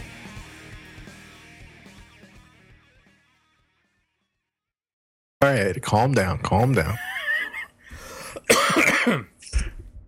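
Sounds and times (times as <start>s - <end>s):
speech: 5.4s - 7.1s
person coughing: 8.3s - 9.4s
person clearing throat: 8.4s - 9.4s.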